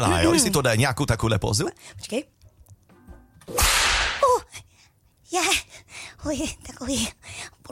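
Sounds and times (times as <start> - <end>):
speech: 0.0 - 2.4, 5.3 - 7.7
loud hissing whip crack: 3.5 - 4.3.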